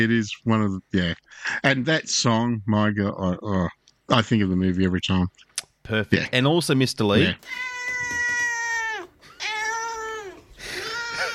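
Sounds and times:
speech: 0:00.0 - 0:08.2
cat meowing in a studio: 0:07.4 - 0:11.3.

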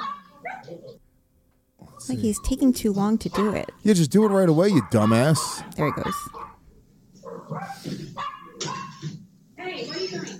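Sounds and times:
dog barking in a played video: 0:00.0 - 0:01.0, 0:03.2 - 0:06.6, 0:07.2 - 0:09.2
speech: 0:02.0 - 0:06.5.

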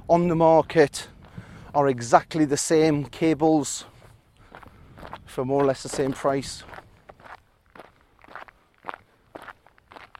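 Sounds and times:
speech: 0:00.1 - 0:01.1, 0:01.8 - 0:03.9, 0:05.3 - 0:06.8
footsteps walking on gravel: 0:02.9 - 0:10.1.

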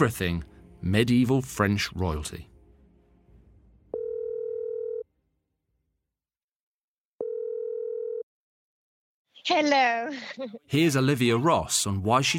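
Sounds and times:
speech: 0:00.0 - 0:02.5, 0:09.4 - 0:12.3
telephone line ringing tone: 0:03.9 - 0:05.1, 0:07.2 - 0:08.3.

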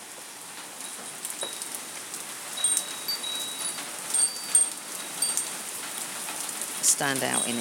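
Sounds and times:
heavy rain falling outdoors: 0:00.0 - 0:07.5
speech: 0:06.9 - 0:07.5.

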